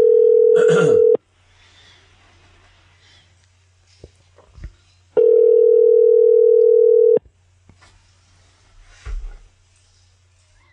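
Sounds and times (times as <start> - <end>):
telephone ringback tones on an outgoing call: 0.0 - 1.2, 5.2 - 7.2.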